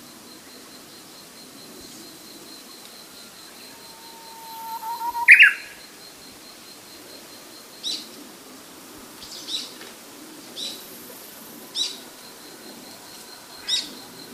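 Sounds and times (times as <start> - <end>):
background noise: 0.0 - 14.3
faint brief high chirps: 0.4 - 8.3, 10.5 - 14.3
Japanese bush warbler sustained whistle with rising flourish: 3.5 - 5.9.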